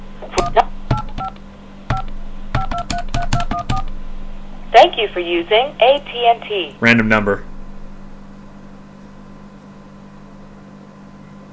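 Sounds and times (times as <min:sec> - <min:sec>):
telephone keypad dialing tones on a long-distance line: 0:00.4 - 0:03.9
speech: 0:04.8 - 0:07.5.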